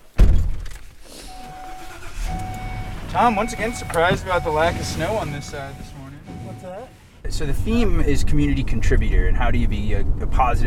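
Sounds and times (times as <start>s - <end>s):
low steady rumble of a car interior while driving: 0.1s - 10.6s
car door closing: 1.3s - 7.0s
speech: 3.1s - 5.9s, 7.3s - 10.6s.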